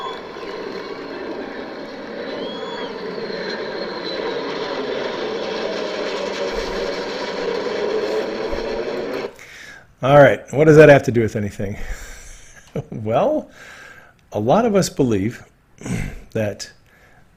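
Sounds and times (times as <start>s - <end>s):
B-2 bomber flying over the Capitol: 0.0s - 9.4s
speech: 10.0s - 12.0s, 13.0s - 16.8s.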